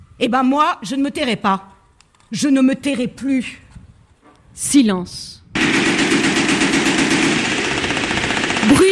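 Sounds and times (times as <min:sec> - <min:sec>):
speech: 0:00.2 - 0:01.7, 0:02.3 - 0:03.6, 0:04.6 - 0:05.8
Kalashnikov-style automatic rifle fire: 0:05.6 - 0:08.8.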